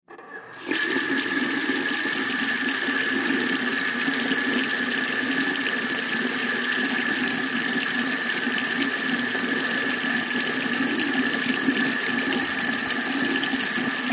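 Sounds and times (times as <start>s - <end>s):
bathroom sink water running: 0.6s - 14.1s.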